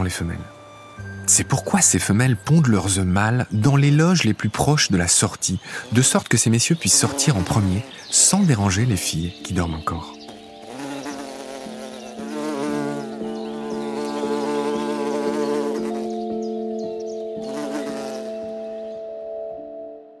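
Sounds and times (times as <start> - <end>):
speech: 0.0 - 0.6, 1.3 - 10.2
bees buzzing: 5.6 - 19.0.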